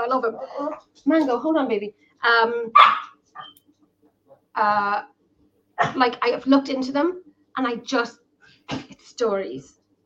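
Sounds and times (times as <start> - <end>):
speech: 0.0 - 3.6, 4.6 - 5.1, 5.8 - 9.8
dog barking: 2.8 - 3.6.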